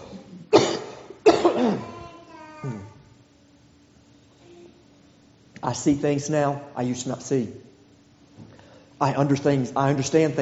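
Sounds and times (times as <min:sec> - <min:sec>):
person coughing from a scratchy throat: 0:00.0 - 0:02.0
speech: 0:05.6 - 0:07.7, 0:09.0 - 0:10.3.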